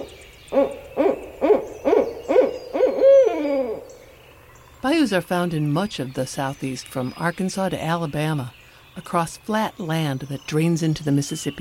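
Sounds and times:
barred owl hooting: 0:00.0 - 0:04.0
faint birdsong: 0:00.0 - 0:11.5
speech: 0:00.5 - 0:01.1, 0:04.9 - 0:11.5.

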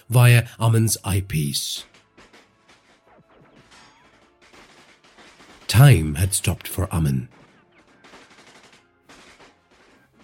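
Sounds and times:
speech: 0:00.1 - 0:02.0, 0:05.8 - 0:07.4
rapid machine gunfire bursts: 0:01.8 - 0:05.9, 0:07.3 - 0:10.2.

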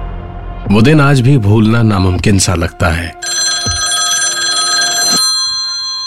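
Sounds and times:
speech: 0:00.7 - 0:03.3
home telephone ringing with an electric bell: 0:03.2 - 0:06.0.

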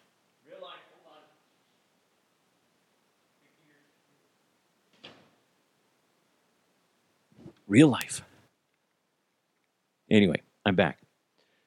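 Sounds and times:
door shutting: 0:04.9 - 0:05.4
speech: 0:07.7 - 0:08.3, 0:10.1 - 0:11.0.

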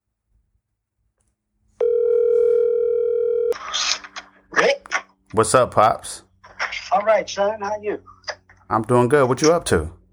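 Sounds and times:
phone dial tone: 0:01.8 - 0:03.6
speech: 0:05.4 - 0:06.2, 0:07.0 - 0:10.0.

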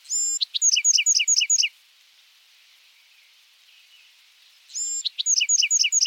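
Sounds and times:
Bewick's wren singing: 0:00.0 - 0:01.7, 0:04.7 - 0:06.0
faint hiss: 0:00.0 - 0:06.0.

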